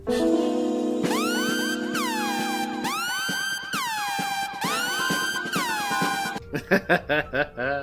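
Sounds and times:
dramatic siren-like alarm sound effect: 1.0 - 6.4
laughter: 6.5 - 7.8.

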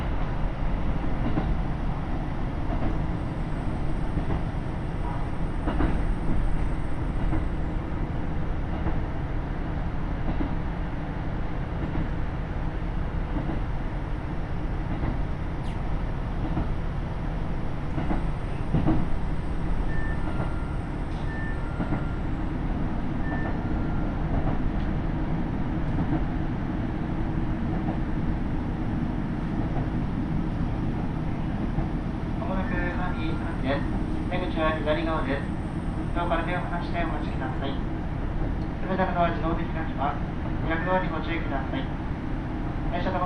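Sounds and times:
KiHa 75 diesel railcar engine rumble heard from inside on the Taita Line, Japan: 0.0 - 43.2
KiHa 75 diesel railcar wheel roar on rails: 0.0 - 43.2.

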